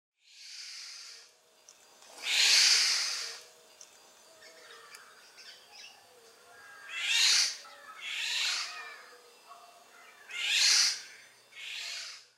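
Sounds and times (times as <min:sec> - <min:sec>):
Eurasian golden oriole Oriolus oriolus alarm calls: 0:02.2 - 0:03.6, 0:04.3 - 0:12.3.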